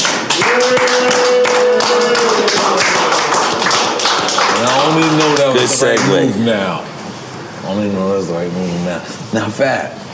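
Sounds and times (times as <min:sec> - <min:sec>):
audience clapping and cheering loudly: 0:00.0 - 0:06.3
speech: 0:05.8 - 0:06.9, 0:07.7 - 0:10.0.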